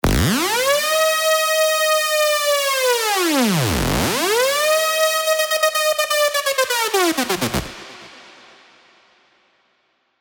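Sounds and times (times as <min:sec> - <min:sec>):
ambulance siren: 0:00.1 - 0:07.6.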